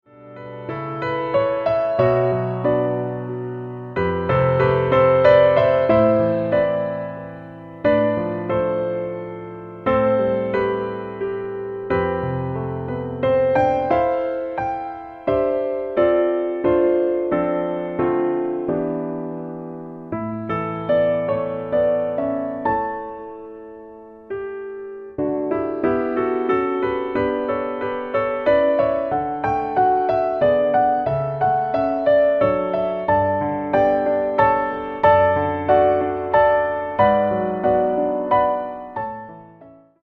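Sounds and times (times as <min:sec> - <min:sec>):
low piano notes: 0:00.1 - 0:40.0.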